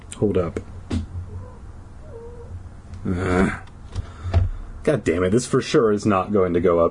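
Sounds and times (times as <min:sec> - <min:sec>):
low steady hum: 0:00.0 - 0:06.8
speech: 0:00.2 - 0:00.8, 0:03.0 - 0:03.6, 0:04.8 - 0:06.8
cat yowling in heat: 0:01.2 - 0:02.6.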